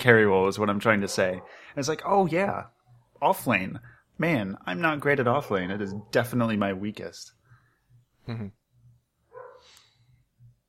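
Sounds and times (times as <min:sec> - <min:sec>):
speech: 0:00.0 - 0:07.4, 0:08.3 - 0:08.6
steady low hum: 0:00.0 - 0:10.6
dog barking excitedly: 0:01.0 - 0:01.7, 0:05.6 - 0:06.2, 0:09.3 - 0:09.7.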